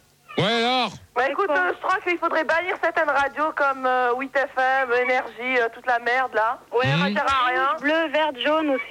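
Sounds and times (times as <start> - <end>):
female cat meowing: 0.3 - 0.9
speech: 0.9 - 8.8.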